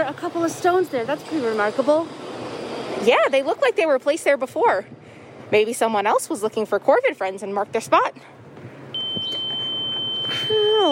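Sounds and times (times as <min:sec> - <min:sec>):
speech: 0:00.2 - 0:02.2, 0:03.0 - 0:08.4, 0:10.5 - 0:10.9
high-pitched ringing tone: 0:09.0 - 0:10.9.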